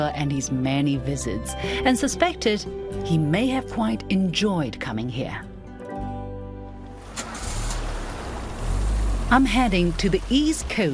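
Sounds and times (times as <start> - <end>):
speech: 0.0 - 5.5, 9.3 - 10.9
boat engine droning on the Malacca River in Malaysia: 7.2 - 10.9.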